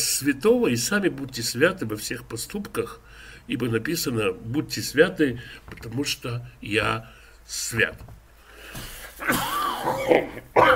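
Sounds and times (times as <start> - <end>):
speech: 0.2 - 10.7
person with a cold coughing: 9.2 - 10.7.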